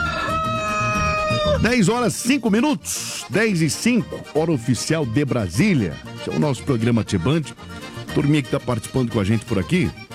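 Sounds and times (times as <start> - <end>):
rooster crowing: 0.0 - 1.6
speech: 1.6 - 10.1.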